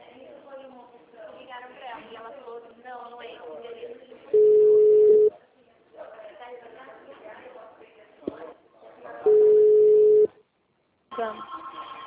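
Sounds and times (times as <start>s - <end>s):
ringback tone beeps while placing a phone call: 4.4s - 5.3s, 9.3s - 10.3s.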